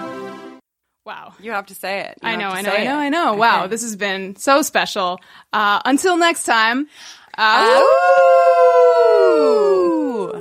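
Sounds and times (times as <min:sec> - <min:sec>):
speech: 0:01.3 - 0:10.3
people howling like wolves: 0:07.5 - 0:10.3.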